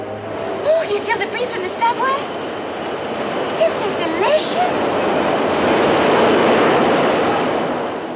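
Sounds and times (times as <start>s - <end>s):
subway train rumbling past under a grate: 0.0s - 8.1s
speech: 0.9s - 2.5s, 3.6s - 5.2s.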